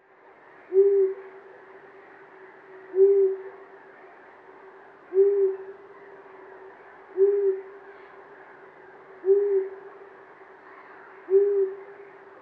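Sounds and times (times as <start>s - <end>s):
faint steady noise: 0.0s - 12.3s
long-eared owl calling with short low hoots: 0.6s - 3.9s, 5.1s - 10.0s, 10.6s - 12.3s.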